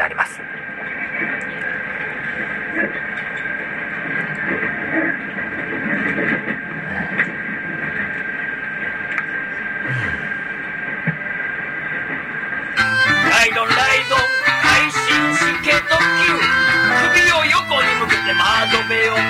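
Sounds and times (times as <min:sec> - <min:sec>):
train rumbling and rattling crossing a river, heard inside a carriage: 0:00.4 - 0:12.8
sustained high whine of a train: 0:12.8 - 0:19.2.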